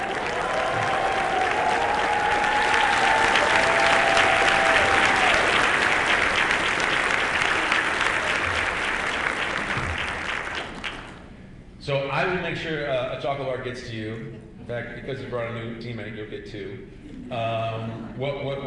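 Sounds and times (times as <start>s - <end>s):
applause from a sizable audience: 0.0s - 11.2s
speech: 12.6s - 18.6s.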